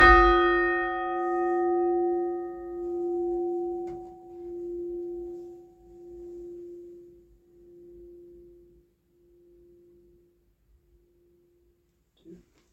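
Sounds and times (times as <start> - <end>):
bells ringing: 0.0 - 7.1.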